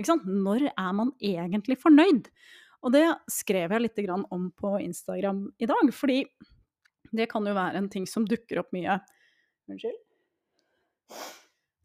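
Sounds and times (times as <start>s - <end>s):
speech: 0.0s - 6.5s, 7.1s - 10.0s, 11.1s - 11.8s
sharp intake of breath catching air: 11.1s - 11.8s.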